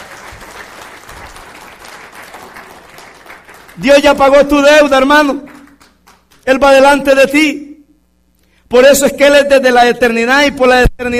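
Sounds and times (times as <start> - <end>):
congregation applauding during a church sermon: 0.0 - 6.9
speech: 3.8 - 5.5, 6.4 - 7.6, 8.7 - 11.1.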